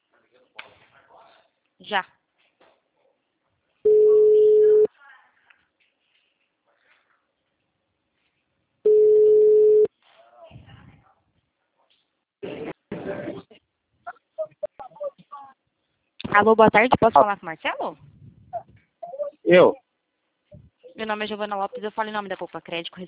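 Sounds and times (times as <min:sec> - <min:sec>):
speech: 0:01.8 - 0:02.2, 0:16.4 - 0:18.1, 0:19.5 - 0:19.8, 0:21.0 - 0:23.0
ringback tone of an outgoing phone call: 0:03.9 - 0:04.9, 0:08.9 - 0:09.9.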